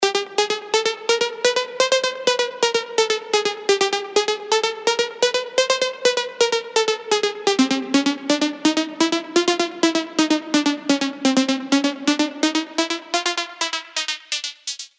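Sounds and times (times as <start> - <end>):
Serum synthesizer arpeggios: 0.0 - 14.8.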